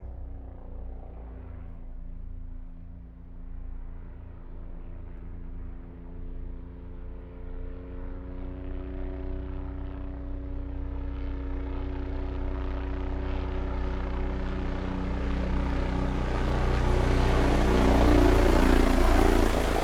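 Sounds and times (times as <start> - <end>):
Bell 407 utility helicopter passing overhead fast: 0.0 - 19.8.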